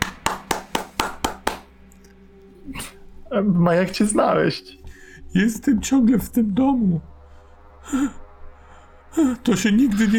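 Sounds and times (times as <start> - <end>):
single person clapping: 0.0 - 1.7
speech: 3.3 - 7.1, 7.9 - 8.2, 9.2 - 10.1.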